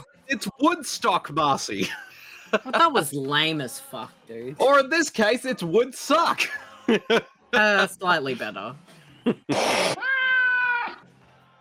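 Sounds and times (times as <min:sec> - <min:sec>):
speech: 0:00.3 - 0:10.0
laughter: 0:01.8 - 0:02.9, 0:06.4 - 0:07.7
brief breathy cat hiss: 0:09.5 - 0:10.2
cat chirp: 0:09.5 - 0:10.3.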